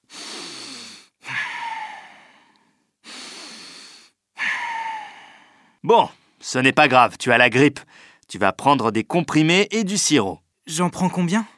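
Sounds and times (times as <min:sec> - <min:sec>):
deep forceful breathing from a patient with flu during a doctor's examination: 0:00.0 - 0:05.8, 0:07.9 - 0:08.2
speech: 0:05.8 - 0:11.5.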